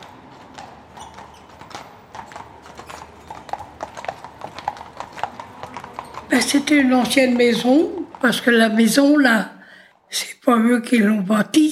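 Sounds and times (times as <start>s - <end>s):
horse-drawn cart wheels rumbling and rattling: 0.0s - 9.2s
horse hooves clip-clopping at a walking pace: 0.0s - 9.3s
speech: 6.3s - 9.5s, 10.1s - 11.6s.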